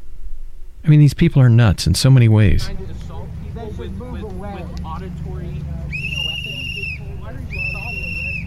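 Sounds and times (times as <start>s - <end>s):
speech: 0.9s - 3.0s
murmuring voices: 2.2s - 8.4s
shrill whistle blasts blown by a man: 5.9s - 8.4s.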